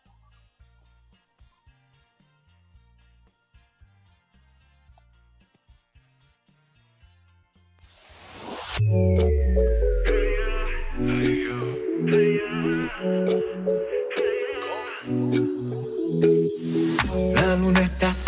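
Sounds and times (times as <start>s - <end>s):
rising sweep: 7.9s - 18.1s
upbeat pop track with punchy beats and synth line: 8.3s - 18.2s.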